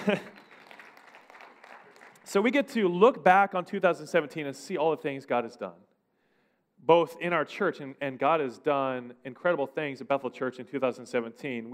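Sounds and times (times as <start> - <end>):
speech: 0.0 - 0.4, 2.3 - 5.8, 6.8 - 11.7
church audience applause during worship: 0.0 - 2.3.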